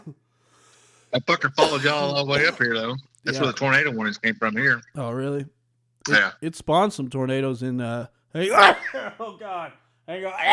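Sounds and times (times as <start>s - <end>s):
speech: 0.0s - 0.2s, 1.1s - 10.5s
single loud sneeze: 8.5s - 9.2s.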